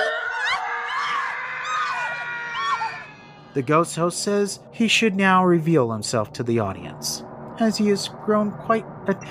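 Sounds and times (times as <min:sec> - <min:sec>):
bride and fiance figures screaming in haunted house ride: 0:00.0 - 0:03.6
dense eerie ambience of haunted house ride: 0:00.0 - 0:09.2
speech: 0:03.6 - 0:09.2.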